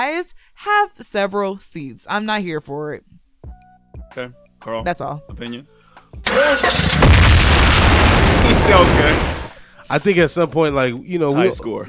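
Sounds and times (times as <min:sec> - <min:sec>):
speech: 0:00.2 - 0:03.2, 0:04.1 - 0:07.1, 0:08.7 - 0:11.8
car engine starting as a car bomb sound effect: 0:06.3 - 0:09.5.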